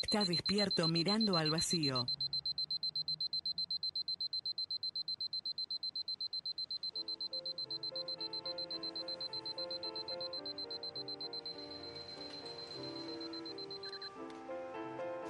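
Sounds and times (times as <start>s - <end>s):
shrill alarm clock ringing in rapid pulses: 0.0s - 14.1s
speech: 0.1s - 2.2s
music: 7.0s - 15.2s.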